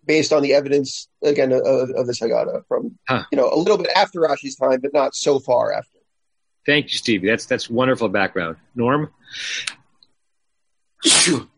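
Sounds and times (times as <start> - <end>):
speech: 0.1 - 6.0, 6.6 - 9.8, 11.0 - 11.5
person sneezing: 11.0 - 11.4.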